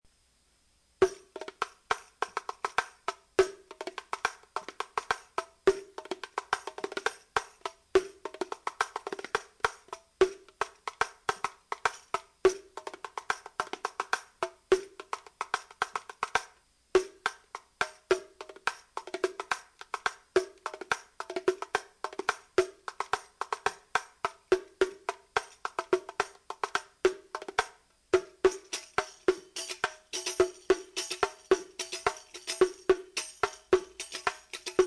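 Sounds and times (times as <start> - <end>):
riqq frame drum: 1.0 - 34.8.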